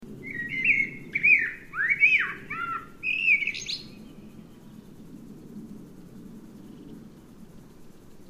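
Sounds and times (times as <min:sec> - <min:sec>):
steady low rumble: 0:00.0 - 0:08.2
Eurasian blackbird singing fluty phrases: 0:00.2 - 0:04.7.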